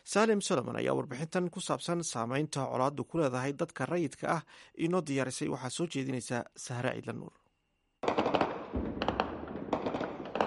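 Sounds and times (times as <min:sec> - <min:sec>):
speech: 0:00.1 - 0:07.4
rapid bursts of gunfire across a city: 0:08.0 - 0:10.4.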